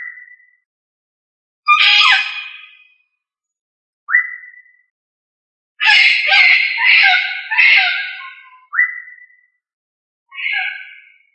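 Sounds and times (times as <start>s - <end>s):
Australorp chicken giving harsh squawks: 1.7s - 2.5s, 5.8s - 8.4s.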